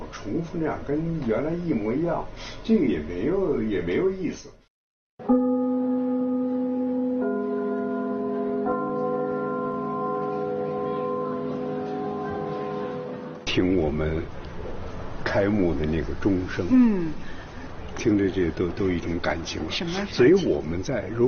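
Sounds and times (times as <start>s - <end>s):
speech: 0.2s - 4.6s, 13.9s - 14.5s, 15.3s - 17.4s, 18.0s - 21.2s
theatre opening bell ringing: 5.2s - 13.4s.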